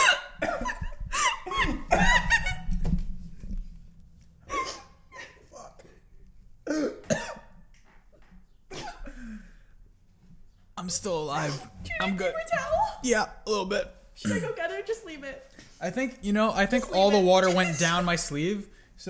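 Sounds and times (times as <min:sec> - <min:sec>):
person coughing and sputtering after inhaling water: 0:00.0 - 0:02.4, 0:04.5 - 0:05.9, 0:06.6 - 0:07.5, 0:08.7 - 0:09.3, 0:14.2 - 0:14.6
laughter: 0:00.0 - 0:02.7, 0:16.6 - 0:18.3
speech: 0:10.9 - 0:19.0.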